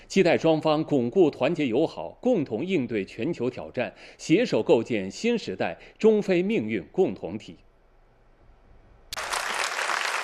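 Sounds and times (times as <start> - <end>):
speech: 0.1 - 7.6
conference attendees applauding after a keynote speech in Dakar: 9.1 - 10.2.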